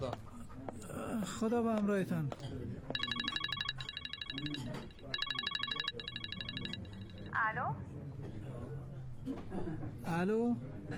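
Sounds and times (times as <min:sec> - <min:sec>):
speech: 0:00.0 - 0:00.3, 0:01.0 - 0:02.9, 0:04.3 - 0:06.2, 0:07.4 - 0:08.4, 0:09.2 - 0:10.9
telephone ringing with electronic trilling tones: 0:03.0 - 0:07.4.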